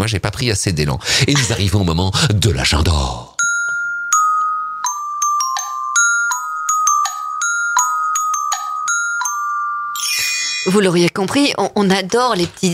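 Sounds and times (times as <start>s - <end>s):
speech: 0.0s - 3.3s, 10.6s - 12.7s
small bell ringing: 3.4s - 11.2s.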